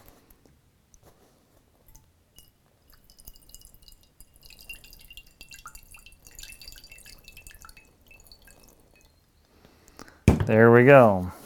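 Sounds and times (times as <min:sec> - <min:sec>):
water trickling and dripping from a fabric bag: 0:01.7 - 0:10.1
water poured onto a fabric bag: 0:01.8 - 0:09.2
speech: 0:10.5 - 0:11.4.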